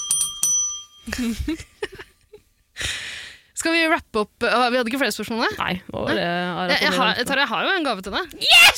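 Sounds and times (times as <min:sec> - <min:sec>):
small bell ringing: 0:00.0 - 0:02.3
speech: 0:01.1 - 0:02.0, 0:03.6 - 0:08.7.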